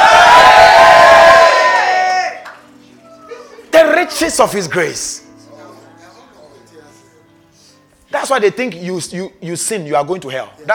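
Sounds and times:
audience shouting together: 0.0s - 2.4s
speech: 4.2s - 5.3s, 8.1s - 10.7s.

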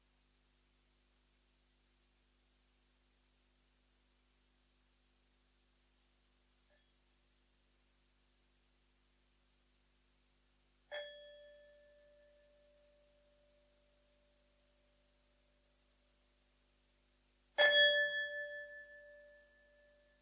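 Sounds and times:
meditation bell struck at the close of a meditation session: 11.0s - 13.6s, 17.6s - 20.2s.

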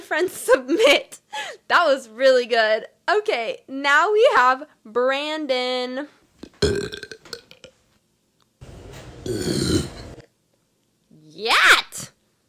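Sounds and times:
speech: 0.1s - 7.0s
loud burps: 6.4s - 7.8s, 9.2s - 10.2s.

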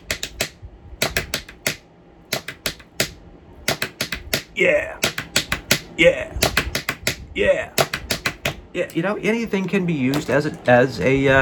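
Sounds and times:
two pens tapped on a hard desk: 0.0s - 7.2s, 7.8s - 8.6s, 10.1s - 10.4s
speech: 4.6s - 5.0s, 6.0s - 6.5s, 7.4s - 7.8s, 8.7s - 11.4s.

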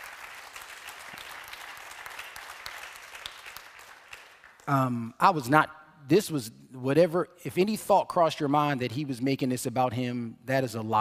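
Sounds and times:
audience applauding: 0.0s - 4.8s
speech: 4.7s - 10.9s.

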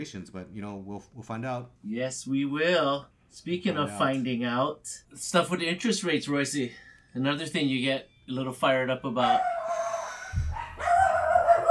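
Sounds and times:
speech: 0.0s - 9.8s
dogs barking and yowling excitedly in high wavering cries: 9.2s - 11.7s.

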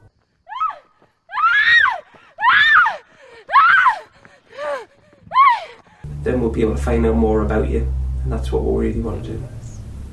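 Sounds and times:
woman screaming in fear: 0.5s - 6.0s
short gasping breaths: 3.0s - 3.5s, 4.1s - 6.0s
speech: 6.3s - 9.6s.

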